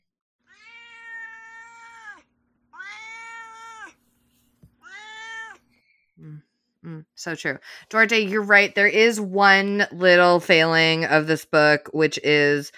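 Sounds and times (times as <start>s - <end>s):
cat meowing: 0.4s - 4.0s, 4.8s - 5.7s
speech: 6.2s - 12.7s.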